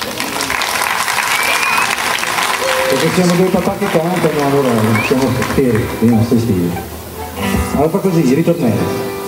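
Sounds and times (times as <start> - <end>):
audience applause for a singing father and his family: 0.0 - 6.8
speech: 2.9 - 7.0, 7.8 - 9.1.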